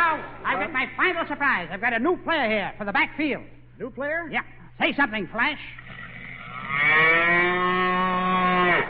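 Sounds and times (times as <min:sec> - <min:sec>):
speech: 0:00.2 - 0:05.9
cow mooing: 0:05.8 - 0:08.8.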